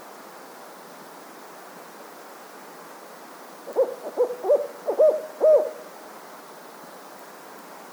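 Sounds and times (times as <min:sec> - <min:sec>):
faint background hiss: 0:00.0 - 0:07.9
fulvous owl Strix fulvescens hooting: 0:03.7 - 0:05.9.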